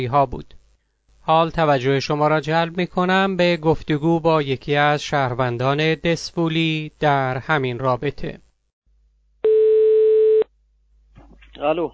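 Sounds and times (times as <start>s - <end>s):
speech: 0.0s - 0.6s, 1.3s - 8.4s, 11.6s - 11.9s
telephone ringback tone on an outgoing call: 9.4s - 10.4s.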